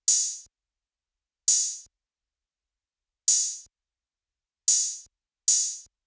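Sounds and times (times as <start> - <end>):
future bass EDM open hi-hat: 0.0 - 0.5, 1.5 - 1.9, 3.3 - 3.7, 4.7 - 5.9.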